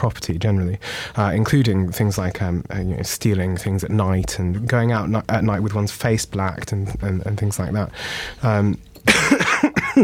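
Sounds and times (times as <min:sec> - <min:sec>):
speech: 0:00.0 - 0:10.0
person coughing: 0:09.1 - 0:10.0.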